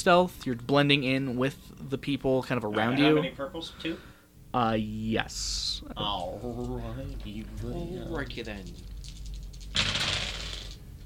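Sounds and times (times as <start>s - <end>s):
speech: 0.0s - 8.9s
dice rolling and scattering across a table: 9.2s - 10.8s.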